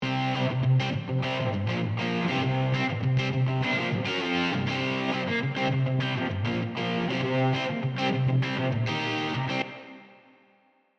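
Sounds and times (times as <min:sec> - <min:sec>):
distorted guitar: 0:00.0 - 0:10.3.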